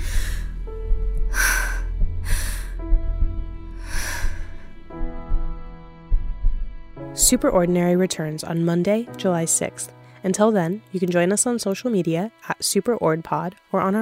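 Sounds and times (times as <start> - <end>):
slow deep breathing: 0.0 - 5.7
speech: 7.3 - 13.9.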